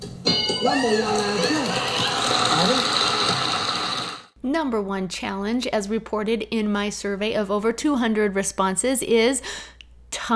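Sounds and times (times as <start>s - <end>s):
bright ringing tone of a game show number one answer sound effect: 0.2s - 1.6s
speech: 0.6s - 1.8s, 4.4s - 10.3s
excited voices: 0.6s - 4.1s.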